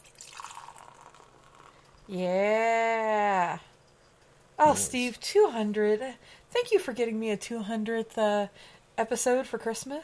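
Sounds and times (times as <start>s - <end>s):
8% ABV beer pouring into a glass: 0.0s - 2.1s
speech: 2.1s - 2.8s, 4.7s - 10.0s.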